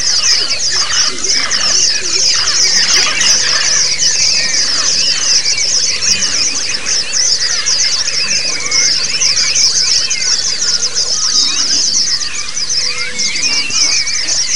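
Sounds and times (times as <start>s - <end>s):
flock of white-eyes singing together: 0.0s - 14.5s.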